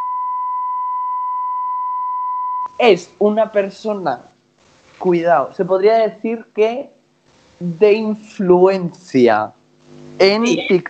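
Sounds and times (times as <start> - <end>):
steady electronic censor bleep tone: 0.0 - 2.7
speech: 2.7 - 4.3, 5.0 - 7.0, 7.6 - 9.6, 10.2 - 10.8.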